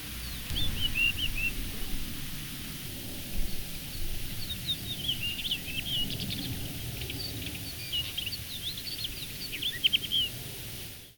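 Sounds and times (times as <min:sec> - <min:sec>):
rufous-tailed rock thrush singing: 0:00.2 - 0:02.2, 0:03.4 - 0:10.3.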